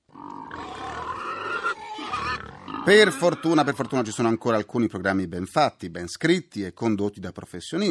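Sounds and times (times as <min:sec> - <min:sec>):
pig grunting and snorting: 0:00.1 - 0:04.1
speech: 0:02.9 - 0:07.8.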